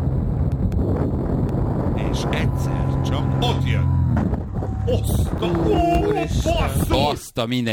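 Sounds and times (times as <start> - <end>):
wind rushing past a flying paraglider: 0.0 - 7.2
speech: 3.4 - 7.7.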